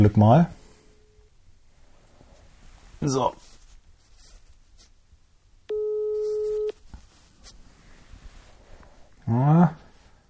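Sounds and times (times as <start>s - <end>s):
speech: 0.0s - 0.6s, 3.0s - 3.5s, 9.3s - 9.8s
telephone ringback tone on an outgoing call: 5.7s - 6.8s.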